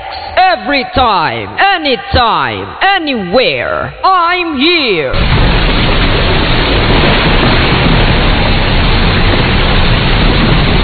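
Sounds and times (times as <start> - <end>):
speech: 0.6 - 5.6
loud steady downpour: 5.1 - 10.8.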